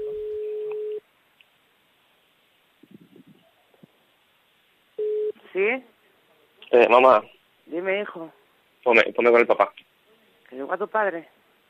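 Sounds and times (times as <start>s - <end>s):
telephone line beep over a call: 0.0s - 1.0s, 5.0s - 5.4s
speech: 5.6s - 5.9s, 6.7s - 9.9s, 10.6s - 11.4s.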